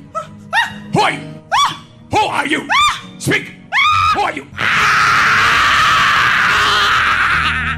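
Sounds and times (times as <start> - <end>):
woman screaming in an exorcism video recording: 0.2 - 0.9, 1.5 - 1.9, 2.7 - 3.1, 3.7 - 7.7
speech: 1.0 - 1.3, 2.3 - 5.2.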